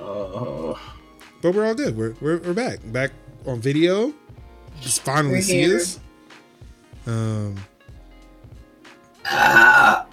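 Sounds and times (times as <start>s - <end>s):
loud drawn-out belch with deep rumbling tone: 0.0s - 0.8s, 9.2s - 10.1s
speech: 0.3s - 4.2s, 4.8s - 6.0s, 7.1s - 7.7s, 9.3s - 10.0s.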